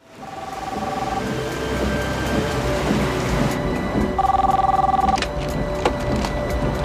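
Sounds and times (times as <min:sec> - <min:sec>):
car phone ringing in electronic tonal bursts: 0:00.2 - 0:01.3, 0:04.2 - 0:05.3
steady low car engine and road rumble: 0:00.2 - 0:06.8.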